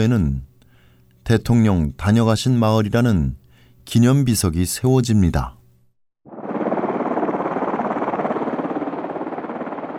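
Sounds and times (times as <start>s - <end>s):
speech: 0.0s - 0.5s, 1.3s - 5.6s
helicopter rotor chopping over engine roar: 6.3s - 9.9s.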